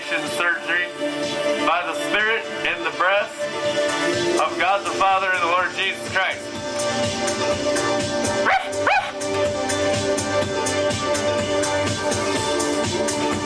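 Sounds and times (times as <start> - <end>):
music: 0.0 - 13.4
speech: 0.1 - 8.6
dog barking with a whiny yelping edge: 8.4 - 9.2.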